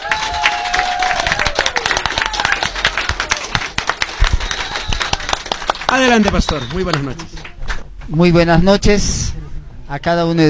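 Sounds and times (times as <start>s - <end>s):
people cheering: 0.0s - 7.5s
audience applause: 0.0s - 7.6s
faint whistles: 4.4s - 5.2s
speech: 5.9s - 7.5s, 8.1s - 9.3s, 9.9s - 10.4s.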